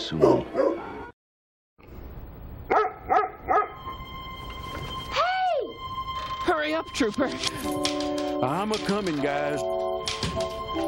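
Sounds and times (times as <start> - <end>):
speech: 0.1 - 0.7, 6.8 - 10.5
dog barking: 0.1 - 1.1, 2.7 - 3.8
steady tonal hum: 3.7 - 10.8.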